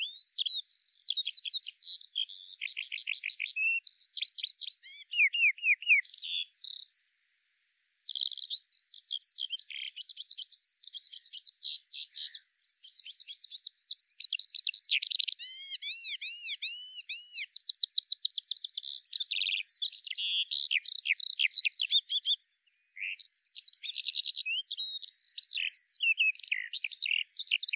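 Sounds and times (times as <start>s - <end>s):
bird song: 0.0s - 7.1s, 8.0s - 27.7s.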